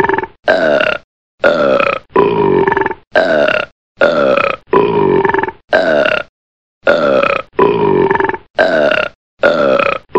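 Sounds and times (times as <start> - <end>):
short throaty gurgling belches: 0.0 - 10.1.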